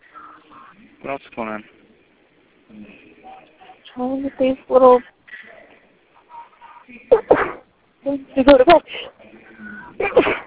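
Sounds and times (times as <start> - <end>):
speech: 0.8 - 1.8, 2.7 - 5.2, 6.9 - 10.4
person sneezing: 7.1 - 7.6, 10.0 - 10.4.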